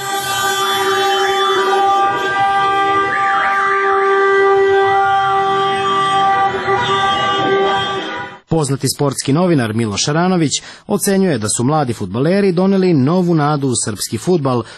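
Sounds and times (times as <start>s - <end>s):
warbling siren-like pitches: 0.0s - 8.3s
car horns honking in a street celebration after a football win: 0.0s - 8.5s
speech: 8.6s - 14.7s.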